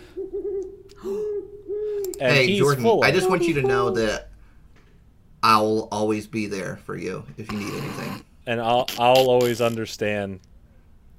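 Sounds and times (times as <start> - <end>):
owl hooting: 0.0 - 4.3
speech: 2.2 - 4.3, 5.5 - 10.5.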